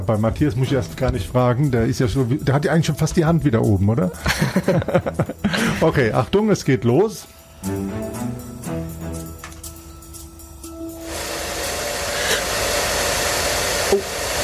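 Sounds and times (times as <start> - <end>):
speech: 0.0 - 8.3
laughter: 4.2 - 6.0
hair dryer running: 10.9 - 14.4.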